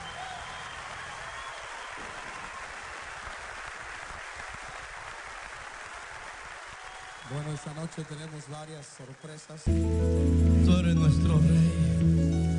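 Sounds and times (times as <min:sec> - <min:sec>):
audience at an evening show applauding: 0:00.0 - 0:09.7
speech: 0:07.3 - 0:12.4.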